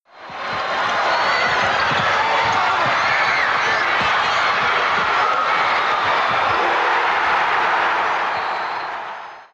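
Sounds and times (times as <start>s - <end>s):
idle crowd: 0.0s - 9.5s.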